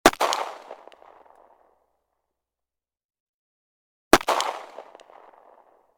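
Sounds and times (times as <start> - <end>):
Bersa gun: 0.0 - 1.8, 4.1 - 5.9.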